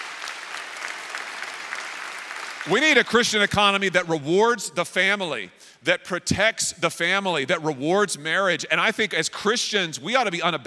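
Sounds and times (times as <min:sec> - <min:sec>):
audience applause: 0:00.0 - 0:03.6
speech: 0:02.6 - 0:10.6.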